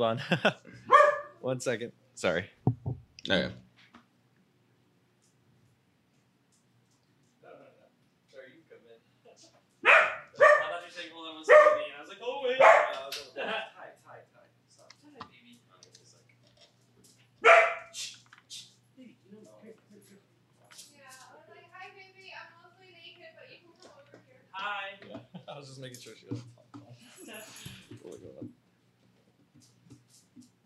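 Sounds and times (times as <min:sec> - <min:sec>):
speech: 0:00.0 - 0:00.8, 0:01.4 - 0:02.6, 0:03.2 - 0:03.6, 0:24.6 - 0:26.6
several dogs barking excitedly at a visitor: 0:00.8 - 0:01.4, 0:09.8 - 0:10.8, 0:11.4 - 0:11.9, 0:12.5 - 0:13.1, 0:17.4 - 0:18.0.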